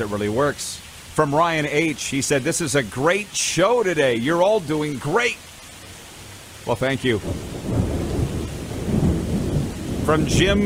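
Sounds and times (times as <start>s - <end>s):
speech: 0.0s - 5.5s, 6.6s - 7.9s, 10.1s - 10.6s
faint rain hissing: 0.0s - 10.6s
thunder rumbling in a storm: 6.9s - 10.6s.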